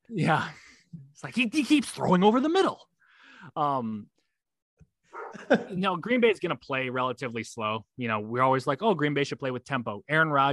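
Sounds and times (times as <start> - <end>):
speech: 0.1 - 0.6, 1.2 - 4.1, 5.3 - 10.5
agitated dog barking: 5.1 - 5.5.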